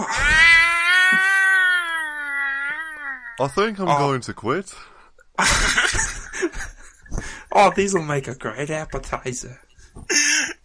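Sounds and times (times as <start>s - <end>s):
kitten meowing: 0.2s - 3.6s
speech: 3.4s - 5.8s, 7.6s - 10.3s.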